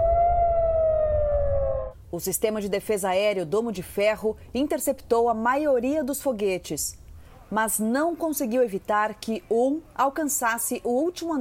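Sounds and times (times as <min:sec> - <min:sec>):
air raid siren wailing in Tel Aviv: 0:00.0 - 0:02.0
low rumble of city background: 0:00.0 - 0:11.3
speech: 0:02.2 - 0:11.3.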